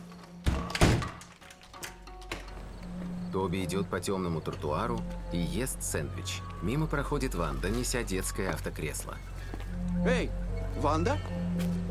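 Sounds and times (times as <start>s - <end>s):
door to the street shut from inside a kitchen: 0.4s - 1.3s
speech: 3.3s - 9.3s, 10.0s - 11.8s.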